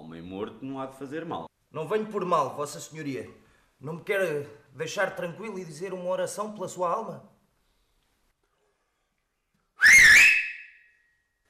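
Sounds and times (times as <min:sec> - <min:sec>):
speech: 0:00.3 - 0:07.3
loud two-finger whistle: 0:09.8 - 0:11.2.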